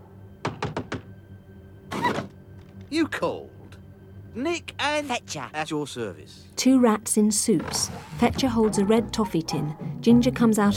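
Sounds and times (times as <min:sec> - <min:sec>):
hand rapping on a door: 0:00.4 - 0:01.2
speech: 0:02.9 - 0:03.6, 0:04.4 - 0:10.7.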